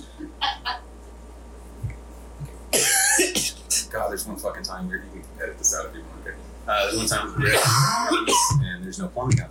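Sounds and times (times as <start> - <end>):
person coughing: 2.8 - 3.9, 6.8 - 8.7
speech: 4.0 - 9.4.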